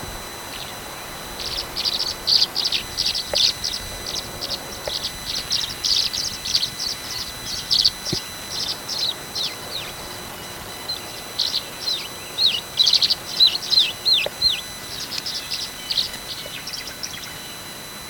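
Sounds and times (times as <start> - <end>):
Tree swallow Tachycineta bicolor calling: 0.4 - 18.0.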